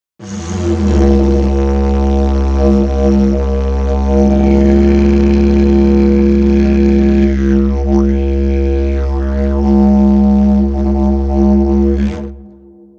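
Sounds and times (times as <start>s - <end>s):
didgeridoo: 0.2s - 12.9s.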